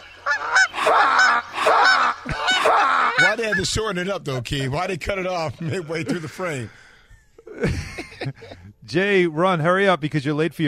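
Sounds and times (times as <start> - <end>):
geese honking as they fly past: 0.0 - 4.0
laughter: 2.2 - 4.0, 5.1 - 8.7
speech: 3.3 - 6.8, 7.6 - 10.6.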